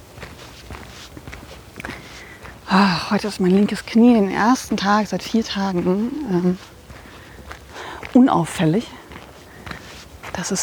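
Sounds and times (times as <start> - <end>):
footsteps of a person walking slowly: 0.0 - 10.6
speech: 2.7 - 6.7, 8.2 - 9.0, 10.4 - 10.6.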